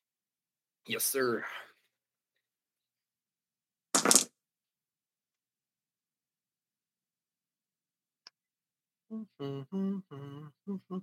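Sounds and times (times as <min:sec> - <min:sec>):
speech: 0:00.9 - 0:01.7, 0:09.1 - 0:11.0
dice tumbling for a tech roll in a tabletop game: 0:04.0 - 0:04.3.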